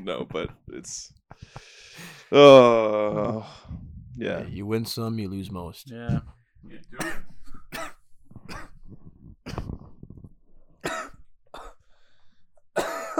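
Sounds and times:
speech: 0.0 - 7.3
strained breaths: 1.3 - 2.4
harsh fit of repeated coughing: 7.0 - 8.8, 10.8 - 11.7, 12.8 - 13.1.

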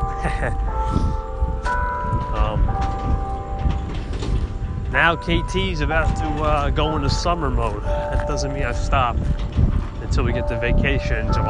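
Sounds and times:
bell ringing with shimmering tones: 0.0 - 11.4
steady rumble of noise: 0.0 - 11.4
speech: 0.2 - 1.2, 4.9 - 11.4.

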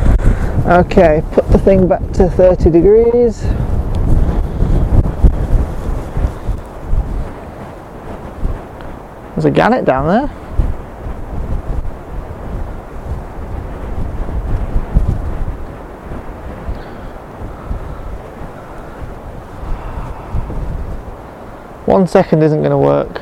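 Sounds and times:
strong wind buffeting the microphone: 0.0 - 23.1
speech: 0.7 - 4.2, 9.4 - 10.4, 21.9 - 23.1.

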